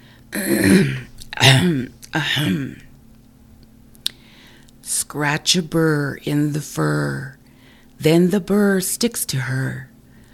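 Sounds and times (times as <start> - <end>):
speech: 0.3 - 2.8, 5.1 - 7.4, 8.0 - 9.9
man clearing his throat in rough gravelly bursts: 0.4 - 2.8.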